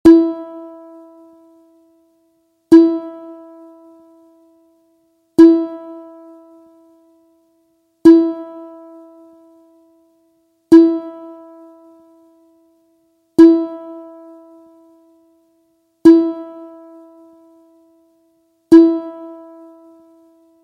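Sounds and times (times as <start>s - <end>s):
single ukulele string plucked: 0.0s - 1.0s, 2.7s - 4.0s, 5.4s - 6.6s, 8.0s - 9.2s, 10.7s - 11.6s, 13.4s - 14.4s, 16.0s - 17.2s, 18.7s - 19.8s.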